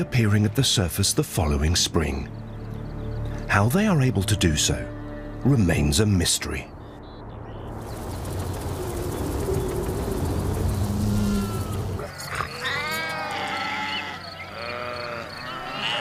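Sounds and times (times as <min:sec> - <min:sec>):
speech: 0:00.0 - 0:02.4, 0:03.5 - 0:06.8
low rumbling: 0:07.2 - 0:12.4
grazing sheep bleating outdoors: 0:11.3 - 0:15.9.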